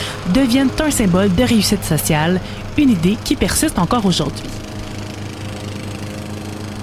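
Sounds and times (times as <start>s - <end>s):
lawn mower engine running: 0.0s - 6.8s
speech: 0.3s - 4.7s.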